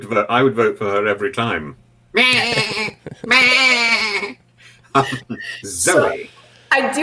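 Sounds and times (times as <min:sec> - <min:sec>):
speech: 0:00.0 - 0:04.4, 0:05.0 - 0:07.0
goat bleating: 0:02.2 - 0:04.4
laughter: 0:02.2 - 0:06.5.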